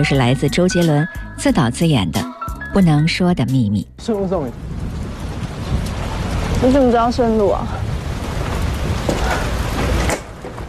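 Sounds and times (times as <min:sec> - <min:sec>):
speech: 0:00.0 - 0:04.8, 0:06.6 - 0:07.9
steady loud rain pouring down with a dense hiss: 0:04.0 - 0:10.6.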